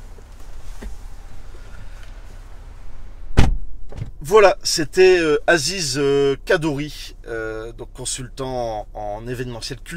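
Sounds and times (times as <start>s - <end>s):
low engine-like rumble inside a car: 0.0s - 9.9s
car door thunk as a passenger gets out: 3.3s - 4.2s
speech: 4.2s - 9.9s.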